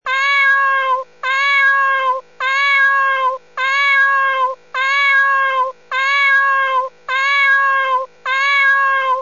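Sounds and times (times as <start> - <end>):
kitten meowing: 0.1 - 9.2.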